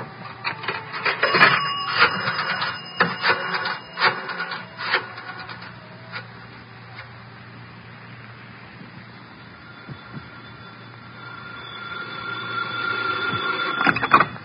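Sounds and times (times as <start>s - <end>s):
telephone line ringing: 0.4s - 6.3s, 9.6s - 14.4s.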